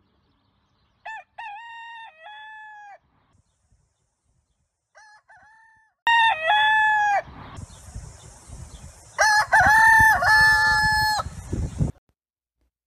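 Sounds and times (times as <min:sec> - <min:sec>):
rooster crowing: 0:01.0 - 0:03.0, 0:04.9 - 0:07.3, 0:09.2 - 0:11.3.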